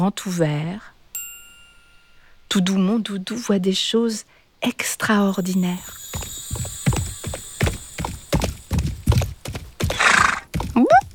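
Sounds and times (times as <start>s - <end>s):
speech: 0.0s - 0.9s, 2.5s - 6.7s
horse hooves clopping: 5.4s - 11.1s
horse snorting: 9.8s - 10.7s
horse whinnying: 9.9s - 10.5s.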